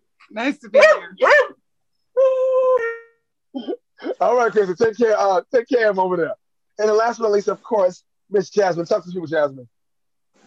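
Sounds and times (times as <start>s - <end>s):
speech: 0.3s - 1.5s, 3.6s - 9.7s
dog giving a howling bark and a short bark: 0.8s - 1.6s.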